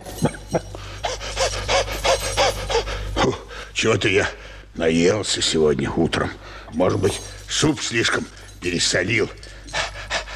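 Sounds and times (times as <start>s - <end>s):
dog panting from heat and thirst: 0.8s - 3.2s, 9.4s - 10.3s
speech: 3.8s - 9.6s.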